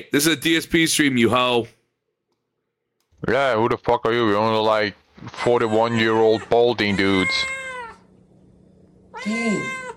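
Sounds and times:
speech: 0.0 - 1.8, 3.2 - 7.6, 9.2 - 9.8
cat meowing: 5.6 - 8.1, 9.1 - 9.9.

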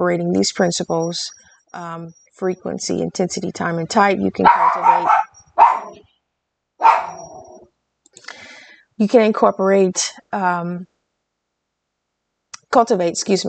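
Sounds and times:
speech: 0.0 - 5.2, 9.0 - 10.9, 12.7 - 13.4
dog barking in loud rough bursts: 4.4 - 6.0, 6.8 - 7.6.

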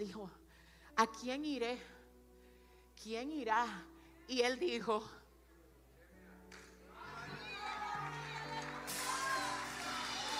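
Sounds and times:
speech: 0.0 - 0.4, 1.0 - 2.0, 3.0 - 5.2
audience applauding: 6.5 - 10.3.

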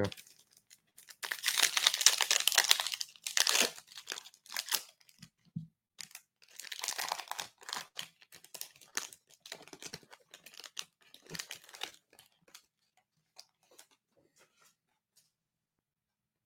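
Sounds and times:
wrapper of a pack of football trading cards crinkling and tearing: 0.0 - 5.2, 6.0 - 12.6.

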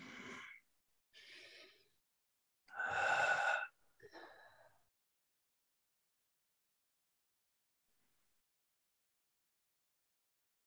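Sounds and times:
deep breaths drawn during a guided relaxation exercise: 1.2 - 2.0, 2.7 - 4.9.

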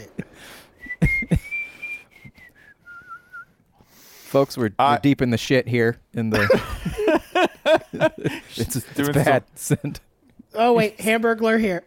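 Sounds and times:
person whistling a slow wavering melody: 0.8 - 3.6
laughter: 1.0 - 1.6, 6.3 - 10.0
speech: 4.3 - 7.0, 7.7 - 11.8.

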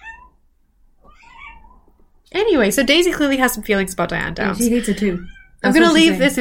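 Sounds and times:
cat meowing: 0.0 - 0.4, 1.0 - 1.9, 5.2 - 5.6
speech: 2.3 - 6.3.

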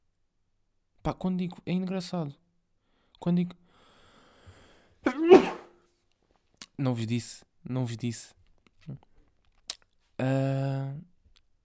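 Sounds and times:
speech: 1.0 - 2.4, 3.2 - 3.6, 6.8 - 9.1, 10.2 - 11.1
person sneezing: 5.1 - 5.7.

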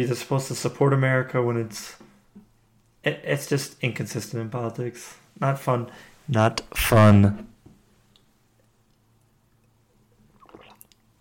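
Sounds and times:
speech: 0.0 - 2.0, 3.0 - 7.5
wet mouth and swallowing clicks: 9.6 - 11.1
person sipping water: 10.2 - 11.1.

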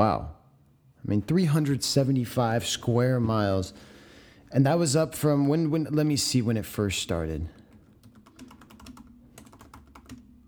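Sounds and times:
speech: 0.0 - 0.4, 1.0 - 3.9, 4.5 - 7.6
low hum: 0.0 - 10.4
typing on a computer keyboard: 7.6 - 10.4.

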